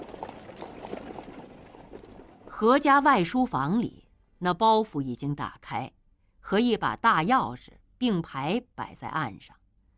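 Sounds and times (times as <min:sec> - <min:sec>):
hooves of a horse pulling a carriage galloping away: 0:00.0 - 0:02.5
speech: 0:02.6 - 0:09.6.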